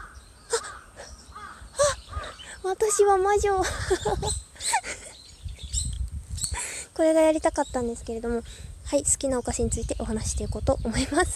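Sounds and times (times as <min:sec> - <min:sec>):
crow cawing outdoors: 0:00.0 - 0:02.5
fainter more calls: 0:00.0 - 0:11.3
speech: 0:02.7 - 0:04.4, 0:07.0 - 0:11.3
laughter: 0:03.6 - 0:05.1.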